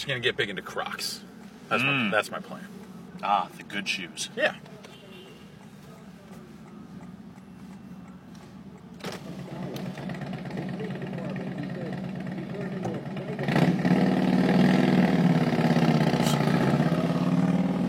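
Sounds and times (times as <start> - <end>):
speech: 0.0 - 4.8
motorcycle engine rumbling: 9.4 - 17.8.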